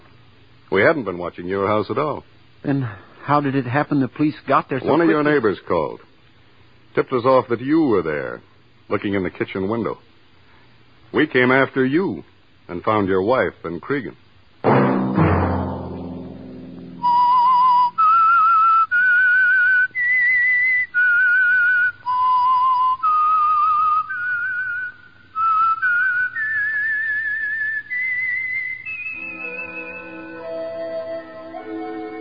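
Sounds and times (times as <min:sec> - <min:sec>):
speech: 0:00.7 - 0:06.1, 0:06.9 - 0:10.1, 0:11.1 - 0:14.2
low crash: 0:14.6 - 0:18.0
whistled radio theme melody: 0:17.0 - 0:32.1
soft instrumental backing: 0:29.2 - 0:32.1.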